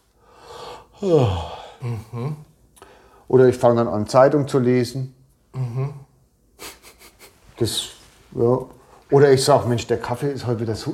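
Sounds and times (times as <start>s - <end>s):
person acting out a yawn: 0.9s - 2.5s, 5.5s - 6.1s
speech: 1.0s - 2.5s, 3.3s - 5.2s, 7.6s - 10.9s.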